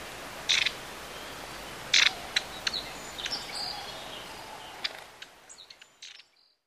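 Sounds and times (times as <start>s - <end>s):
long-tailed tit calls: 0.4s - 0.9s, 1.9s - 6.2s.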